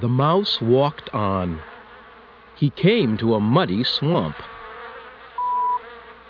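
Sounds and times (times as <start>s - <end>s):
speech: 0.0s - 1.7s, 2.6s - 4.5s
bees buzzing: 0.0s - 6.2s
pure high beep: 5.4s - 5.8s.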